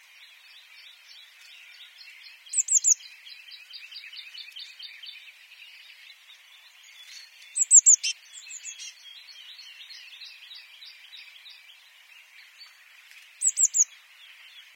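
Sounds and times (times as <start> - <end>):
background bird twittering: 0.0 - 14.7
Eurasian blue tit Cyanistes caeruleus calls: 2.5 - 3.0, 7.5 - 9.0, 13.4 - 13.9.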